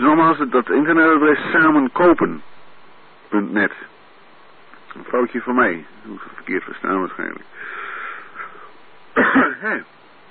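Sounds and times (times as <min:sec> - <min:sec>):
speech: 0:00.0 - 0:02.6, 0:03.3 - 0:03.9, 0:05.0 - 0:07.8, 0:09.2 - 0:10.0
thin quiet hiss: 0:00.0 - 0:10.2
throat clearing from a tickle in the throat: 0:09.2 - 0:09.9.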